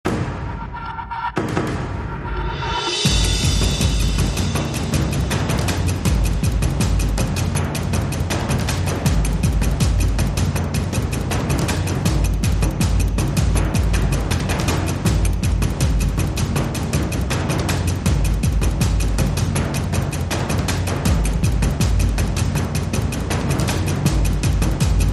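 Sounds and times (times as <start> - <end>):
drums and percussion: 0.0 - 25.1.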